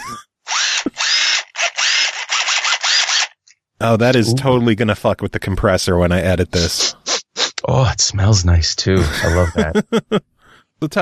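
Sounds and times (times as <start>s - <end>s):
laughter: 0.0s - 0.2s, 8.9s - 10.2s
power drill whirring: 0.5s - 3.4s
speech: 3.8s - 7.0s, 7.7s - 11.0s.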